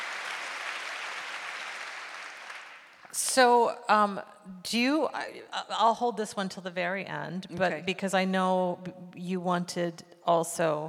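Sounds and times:
audience applause: 0:00.0 - 0:03.1
speech: 0:03.1 - 0:10.8.

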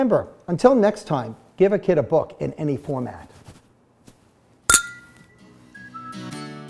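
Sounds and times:
speech: 0:00.0 - 0:03.3
glasses clinking together in a toast: 0:04.7 - 0:05.3.

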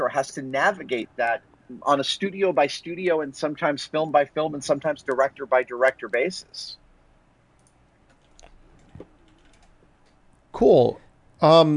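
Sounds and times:
speech: 0:00.1 - 0:06.8, 0:10.6 - 0:11.7
computer keyboard typing: 0:07.6 - 0:10.2.

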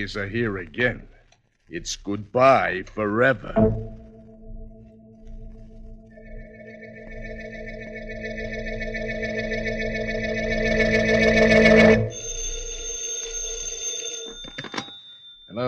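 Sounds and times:
speech: 0:00.0 - 0:01.1, 0:01.7 - 0:04.0
faint noise: 0:00.0 - 0:05.8
thin steady high-pitched tone: 0:03.5 - 0:13.7
telephone bell ringing: 0:10.6 - 0:15.6.

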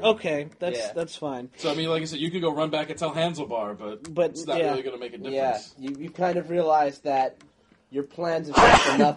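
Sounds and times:
speech: 0:00.0 - 0:09.1
sneeze: 0:08.5 - 0:09.1.

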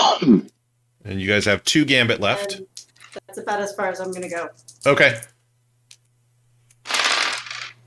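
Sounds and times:
speech: 0:00.2 - 0:05.3
three dice rattling across a hard surface in a tabletop role-playing game: 0:06.8 - 0:07.8.

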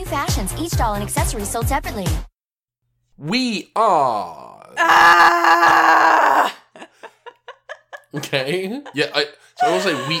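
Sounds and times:
speech: 0:00.1 - 0:02.3, 0:03.2 - 0:06.6, 0:08.1 - 0:10.1
person howling into the microphone: 0:03.8 - 0:06.6, 0:09.6 - 0:10.1
laughter: 0:06.4 - 0:10.1.

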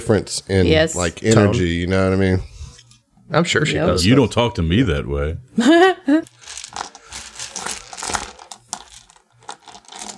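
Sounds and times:
speech: 0:00.0 - 0:02.5, 0:03.3 - 0:06.8
dice rattling and clattering: 0:06.3 - 0:10.1.

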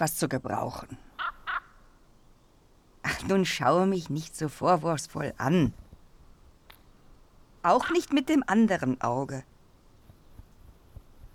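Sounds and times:
speech: 0:00.0 - 0:01.0, 0:03.0 - 0:05.8, 0:07.6 - 0:09.5
crow cawing: 0:01.2 - 0:02.0.

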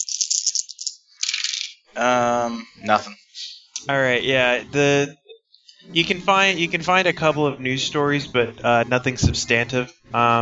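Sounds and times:
five dice rattling and rolling during a tabletop role-playing game: 0:00.0 - 0:01.9
speech: 0:02.0 - 0:03.2, 0:03.8 - 0:05.2, 0:05.8 - 0:10.4.

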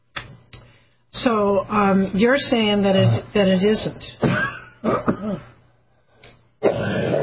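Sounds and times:
speech: 0:01.2 - 0:05.5
person clearing throat: 0:04.2 - 0:05.6, 0:06.6 - 0:07.2
person coughing: 0:04.2 - 0:05.6.

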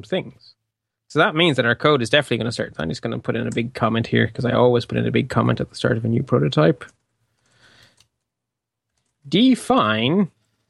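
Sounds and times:
speech: 0:00.0 - 0:07.0, 0:09.2 - 0:10.4
typing on a computer keyboard while writing code: 0:08.9 - 0:09.3.

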